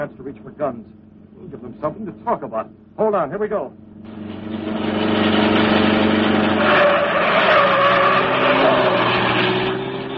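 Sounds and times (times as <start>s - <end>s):
speech: 0.0s - 4.8s
car engine roaring as the vehicle speeds by: 4.1s - 10.1s
car tires squealing: 4.1s - 10.1s.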